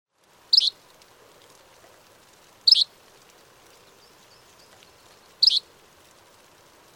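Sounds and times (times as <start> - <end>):
sharp high bird calls: 0.5 - 0.8, 2.7 - 2.9, 4.0 - 5.7.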